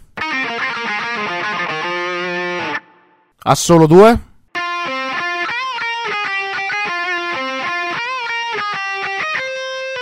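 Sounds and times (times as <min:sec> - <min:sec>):
distorted electric guitar playing rapid notes and chords during a soundcheck: 0:00.0 - 0:03.1, 0:04.6 - 0:10.0
speech: 0:03.4 - 0:04.3.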